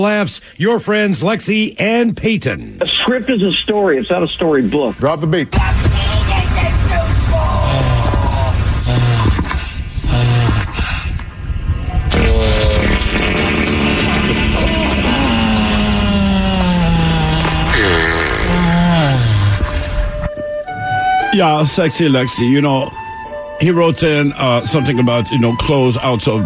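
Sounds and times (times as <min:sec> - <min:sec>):
speech: 0:00.0 - 0:06.2, 0:21.4 - 0:23.0, 0:23.6 - 0:26.4
buzzy drones: 0:05.6 - 0:09.4, 0:11.7 - 0:20.3
blaring fart sound: 0:07.7 - 0:10.9, 0:12.1 - 0:19.9.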